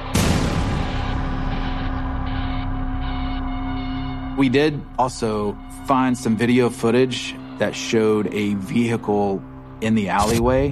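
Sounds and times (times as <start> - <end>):
gunshot blast: 0.0 - 1.9
low drone: 0.0 - 10.7
speech: 4.4 - 10.7.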